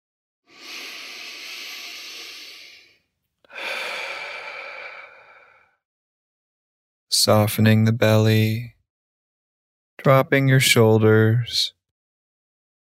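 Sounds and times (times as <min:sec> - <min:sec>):
long exhale through mouth: 0:00.5 - 0:05.7
slow deep inhale through nose: 0:00.5 - 0:05.8
speech: 0:07.2 - 0:08.8, 0:10.0 - 0:11.8.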